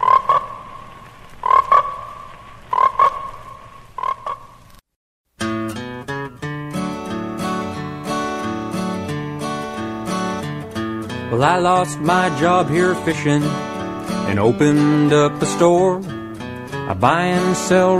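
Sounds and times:
frog croaking with a raspy buzz: 0:00.0 - 0:00.8, 0:01.4 - 0:04.6
music: 0:05.4 - 0:17.9
speech: 0:11.4 - 0:13.6, 0:14.3 - 0:16.1, 0:16.9 - 0:17.9.

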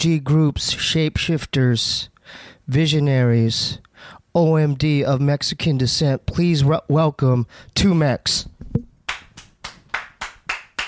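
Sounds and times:
speech: 0:00.0 - 0:08.9
sharp hand claps: 0:09.1 - 0:10.8.

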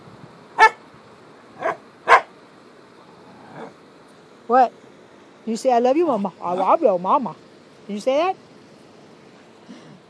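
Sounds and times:
dog barking: 0:00.6 - 0:00.8, 0:01.6 - 0:02.3
speech: 0:04.5 - 0:04.8, 0:05.5 - 0:08.4.

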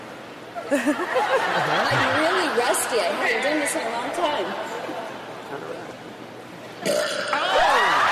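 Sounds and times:
laughter: 0:00.6 - 0:02.8
speech: 0:00.7 - 0:06.0, 0:06.8 - 0:08.0
long loud burp: 0:06.8 - 0:07.6.

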